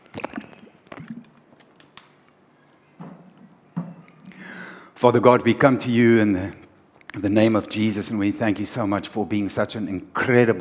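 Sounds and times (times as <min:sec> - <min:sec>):
person sipping water with wet gulps: 0:00.0 - 0:02.5, 0:06.8 - 0:07.2
speech: 0:05.0 - 0:06.6, 0:07.2 - 0:10.5.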